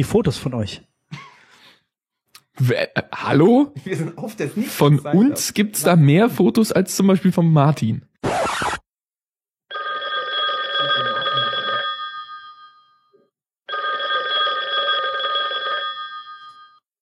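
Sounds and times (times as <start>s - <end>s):
speech: 0.0s - 1.2s, 2.6s - 8.8s
telephone ringing with an incoming call: 9.7s - 16.9s.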